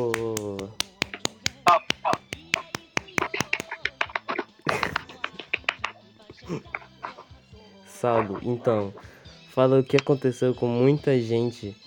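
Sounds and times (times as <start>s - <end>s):
quick sharp hand claps in applause: 0.0s - 6.0s
laughter: 4.6s - 5.6s
speech: 6.5s - 6.8s, 8.0s - 11.8s.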